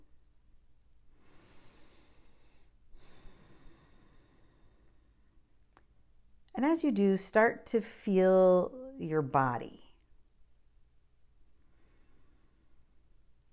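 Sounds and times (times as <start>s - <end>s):
slow deep breathing: 1.1s - 5.5s, 11.6s - 13.2s
speech: 6.6s - 9.8s.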